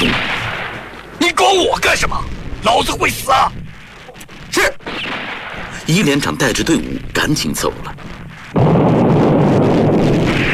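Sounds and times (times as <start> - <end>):
artillery shell exploding in a mountain valley: 0.0 - 7.2, 7.9 - 10.5
cannon fire in a mountain valley: 0.0 - 10.5
speech: 1.5 - 3.6, 4.5 - 4.8, 5.9 - 8.7.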